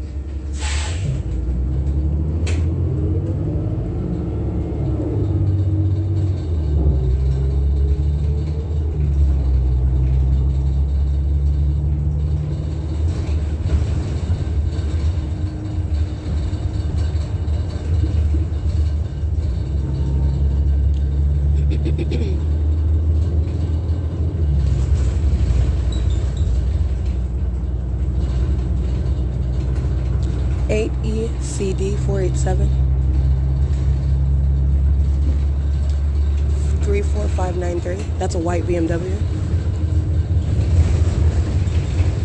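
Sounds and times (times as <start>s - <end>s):
bus engine rumble while riding: 0.0s - 42.2s
speech: 32.4s - 32.7s.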